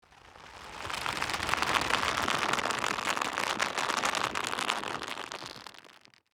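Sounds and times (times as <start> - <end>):
rope tightening and stretching long: 0.4 - 6.3.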